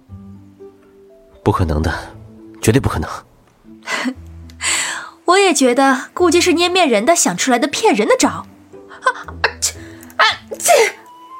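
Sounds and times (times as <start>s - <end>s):
speech: 1.5s - 3.3s, 5.3s - 9.4s, 10.6s - 11.0s
short catching breaths before sneezing: 3.8s - 5.2s, 9.8s - 11.0s.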